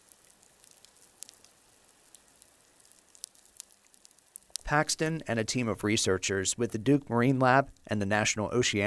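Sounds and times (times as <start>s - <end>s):
sharp underwater clicks and pops on a reef: 0.0s - 5.1s
underwater crackle of feeding shrimp and fish on a reef: 0.0s - 5.3s
speech: 4.7s - 8.8s.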